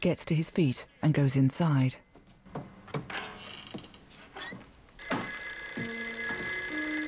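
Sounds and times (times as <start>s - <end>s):
speech: 0.0s - 2.7s
soft knocks: 2.1s - 6.6s
indoor telephone bell ringing: 5.0s - 7.0s.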